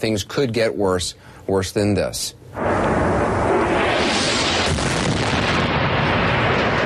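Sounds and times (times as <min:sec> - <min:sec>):
speech: 0:00.0 - 0:02.7
incoming artillery rocket fire pounding city neighborhoods of Homs: 0:02.6 - 0:06.8.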